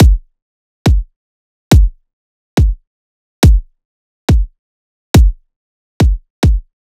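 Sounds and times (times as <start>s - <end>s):
riddim kick drum loop at 140 BPM: 0.0s - 0.3s, 0.9s - 1.1s, 1.7s - 2.0s, 2.6s - 2.8s, 3.4s - 3.7s, 4.3s - 4.5s, 5.2s - 5.4s, 6.0s - 6.7s.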